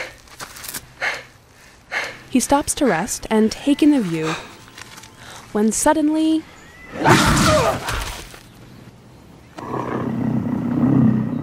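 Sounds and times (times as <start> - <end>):
speech: 2.3 - 4.5, 5.5 - 7.9
mountain lion roaring as it attacks: 9.6 - 11.4.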